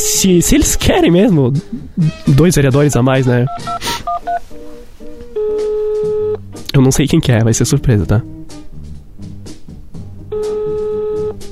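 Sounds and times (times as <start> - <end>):
speech: 0.2 - 8.6
telephone keypad dual-tone dialing beeps: 3.5 - 4.4, 5.4 - 6.4, 10.3 - 11.4
long steady telephone tone: 5.4 - 6.4, 10.3 - 11.4.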